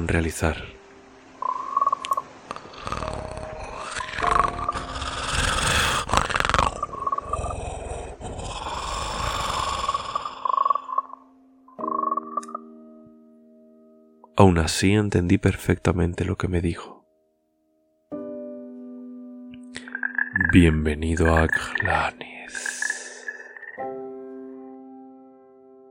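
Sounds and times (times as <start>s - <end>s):
speech: 0.1s - 0.7s, 14.4s - 16.9s, 20.5s - 22.7s
strange guttural inhuman voice hissing and croaking: 1.4s - 11.2s, 19.8s - 23.8s.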